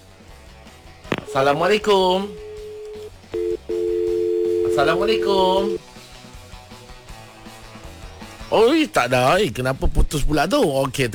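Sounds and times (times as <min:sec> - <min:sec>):
phone line hum from an incoming call: 0:01.1 - 0:05.8
two short phone line beeps: 0:01.2 - 0:05.8
speech: 0:01.3 - 0:02.4, 0:04.8 - 0:05.9, 0:08.5 - 0:11.1.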